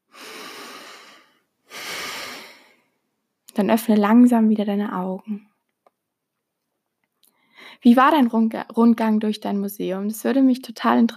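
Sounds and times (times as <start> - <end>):
person breathing deeply in and out during a guided relaxation exercise: 0.0 - 3.0
speech: 3.6 - 5.5, 7.8 - 11.1.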